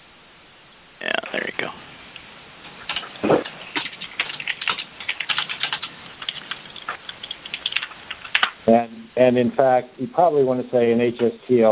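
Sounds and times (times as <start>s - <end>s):
typing on a computer keyboard: 2.8s - 8.6s
speech: 8.7s - 11.7s.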